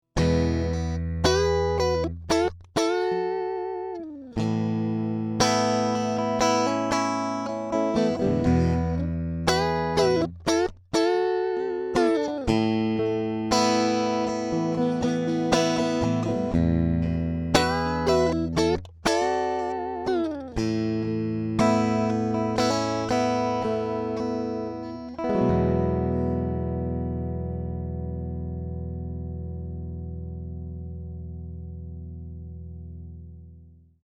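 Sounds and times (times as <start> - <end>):
electric guitar through a reverb amp with fuzz, unprocessed: 0.2 - 32.6.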